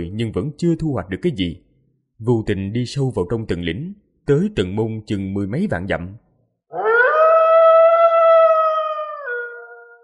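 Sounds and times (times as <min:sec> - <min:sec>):
speech: 0:00.0 - 0:01.6, 0:02.2 - 0:06.2
wolf-like howl echoing through mountains: 0:06.7 - 0:10.0.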